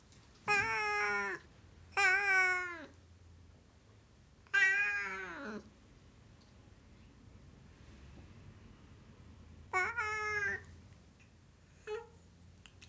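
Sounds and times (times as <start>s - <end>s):
Siamese cat meowing: 0.5s - 1.4s, 2.0s - 2.9s, 4.5s - 5.6s, 9.7s - 10.7s.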